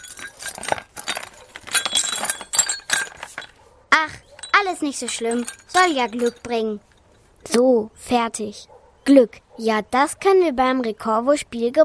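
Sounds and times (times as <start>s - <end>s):
broken glass shards clinking and scraping as they are gathered up: 0.0s - 7.2s
speech: 4.7s - 6.9s, 7.6s - 11.8s.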